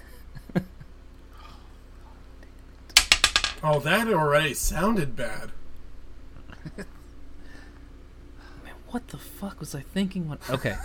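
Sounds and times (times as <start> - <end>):
dice clattering onto a hard surface: 3.0 - 3.9
speech: 3.6 - 5.6, 6.7 - 7.0, 8.9 - 10.8.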